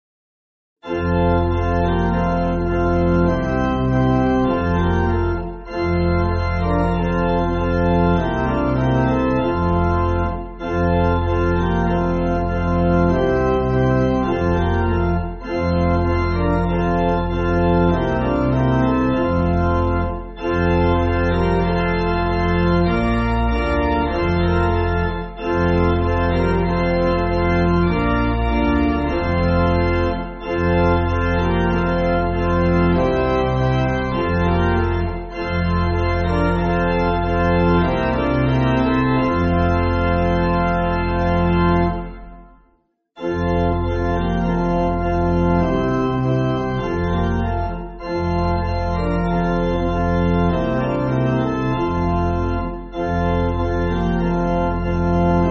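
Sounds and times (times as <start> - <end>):
pipe organ backing music for churches: 0.8 - 42.6, 43.2 - 55.4.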